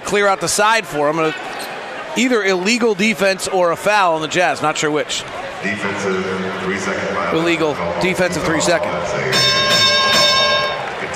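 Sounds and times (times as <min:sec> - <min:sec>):
crowd noise at a basketball game: 0:00.0 - 0:11.1
speech: 0:00.1 - 0:01.5, 0:02.1 - 0:10.0
bell ringing during a basketball game broadcast: 0:09.3 - 0:11.0.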